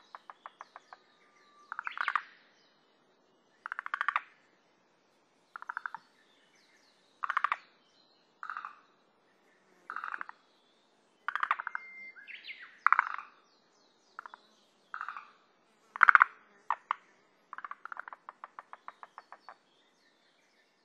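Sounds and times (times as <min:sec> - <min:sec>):
forest green tree frog croaking on Sado: 0:00.0 - 0:02.3, 0:03.6 - 0:04.4, 0:05.5 - 0:06.0, 0:07.2 - 0:07.7, 0:08.4 - 0:08.9, 0:09.9 - 0:10.4, 0:11.3 - 0:11.9, 0:12.6 - 0:13.4, 0:14.2 - 0:19.6.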